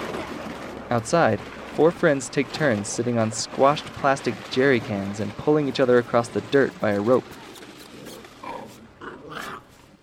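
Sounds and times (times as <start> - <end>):
speech: 0.9 - 7.4
small puppy whimpering and growling: 7.5 - 9.9.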